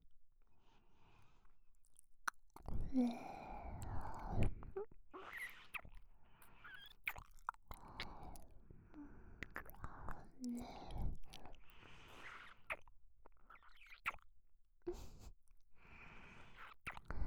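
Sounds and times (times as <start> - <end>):
wet ear-licking mouth sounds: 1.8 - 8.5, 9.4 - 14.3, 16.4 - 17.1
speech: 2.9 - 3.3.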